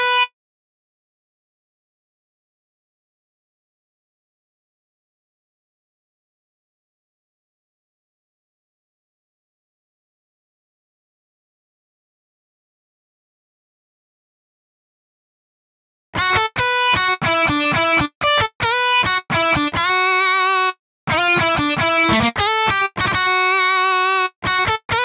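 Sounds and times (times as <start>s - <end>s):
karaoke backing guitar playing: 16.2s - 25.0s.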